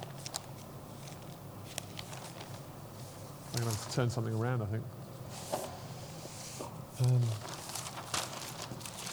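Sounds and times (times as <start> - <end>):
paper rustling and crinkling while being handled: 0.0 - 4.4, 5.3 - 9.1
speech: 3.5 - 5.0, 7.0 - 7.6
low murmured voice: 7.0 - 7.6.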